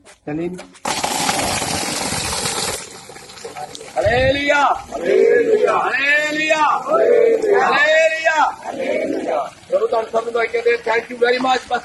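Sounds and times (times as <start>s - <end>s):
speech: 0.2s - 1.6s, 4.0s - 11.8s
water gushing from a borewell pump outlet: 0.8s - 5.0s, 9.3s - 11.8s
water trickling: 0.8s - 5.0s, 7.6s - 11.8s.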